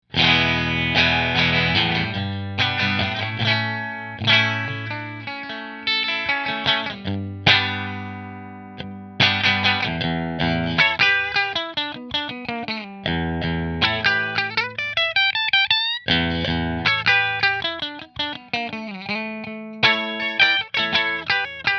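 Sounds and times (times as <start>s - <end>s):
Fender Stratocaster Sunburst American Standard guitar in position 3: 0.0s - 21.7s.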